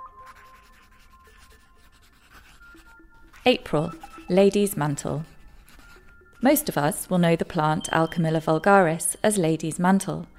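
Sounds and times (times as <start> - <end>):
pencil scratching across paper: 0.2 - 7.8
speech: 3.4 - 5.3, 6.4 - 10.3.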